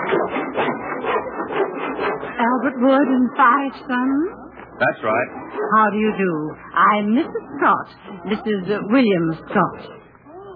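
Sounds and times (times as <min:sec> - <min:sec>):
hand saw cutting wood in a workshop: 0:00.0 - 0:03.0
speech: 0:02.6 - 0:10.0.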